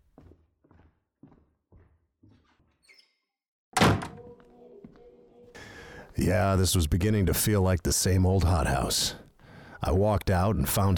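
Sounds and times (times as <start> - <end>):
soft footsteps: 0.0 - 2.8
heavy door thudding shut: 3.8 - 4.3
speech: 6.2 - 9.2, 9.8 - 10.9.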